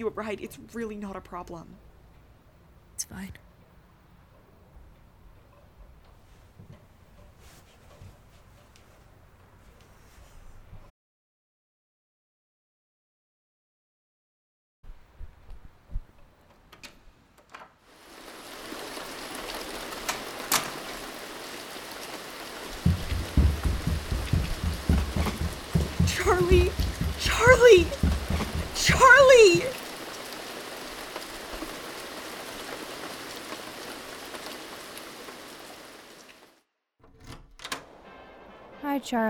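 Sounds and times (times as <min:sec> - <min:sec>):
speech: 0:00.0 - 0:01.9, 0:03.0 - 0:03.5, 0:39.0 - 0:39.2
heavy rain pouring: 0:17.9 - 0:36.6
low rumble: 0:22.8 - 0:28.8
person calling out over the downpour: 0:25.8 - 0:29.8.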